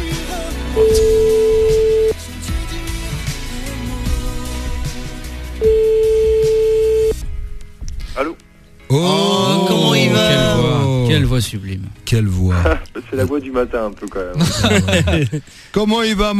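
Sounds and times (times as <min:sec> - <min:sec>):
quiet music: 0:00.0 - 0:16.3
long steady ringback tones from an outgoing phone call: 0:00.8 - 0:02.2, 0:05.6 - 0:07.2
speech: 0:09.0 - 0:09.2, 0:11.2 - 0:16.3
laughter: 0:14.4 - 0:15.5.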